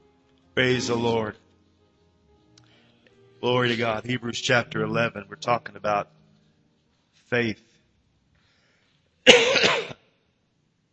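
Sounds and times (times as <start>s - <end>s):
speech: 0.6s - 1.4s, 3.4s - 6.2s, 7.3s - 7.7s, 9.2s - 9.8s
harsh rasping cough: 9.2s - 10.1s.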